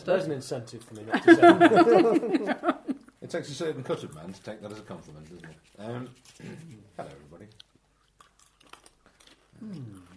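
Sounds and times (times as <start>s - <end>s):
speech: 0.0s - 7.7s, 9.6s - 10.1s
laughter: 1.1s - 3.1s
crunchy munching of popcorn: 3.8s - 10.1s.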